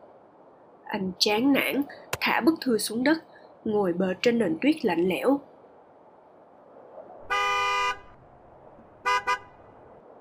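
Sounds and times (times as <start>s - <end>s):
speech: 0.9s - 5.5s
delivery truck horn honking: 7.3s - 8.1s, 9.0s - 9.6s.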